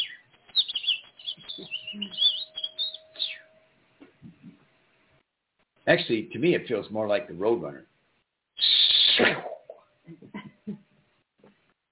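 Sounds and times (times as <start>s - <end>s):
small bird chirping: 0.0s - 3.6s
speech: 5.9s - 7.9s.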